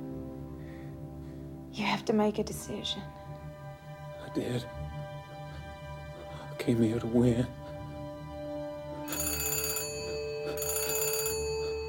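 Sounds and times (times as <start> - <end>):
music: 0.0 - 11.8
speech: 1.8 - 3.2, 4.4 - 4.8, 6.6 - 7.6
telephone bell ringing: 9.0 - 11.8.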